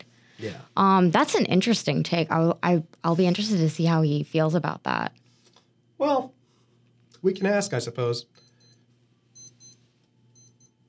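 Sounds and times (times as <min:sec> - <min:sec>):
low room hum: 0:00.0 - 0:10.8
speech: 0:00.4 - 0:05.2, 0:06.0 - 0:06.4, 0:07.2 - 0:08.4
small wristwatch alarm beeping in high-pitched double chirps: 0:07.4 - 0:07.6, 0:08.3 - 0:08.8, 0:09.4 - 0:10.8.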